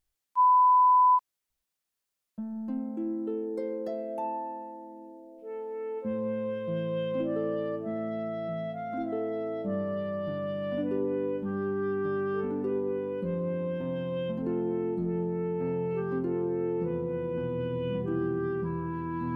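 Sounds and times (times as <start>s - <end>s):
loud steady electronic beep signalling listeners to answer: 0.4s - 1.2s
instrumental music: 2.4s - 19.3s.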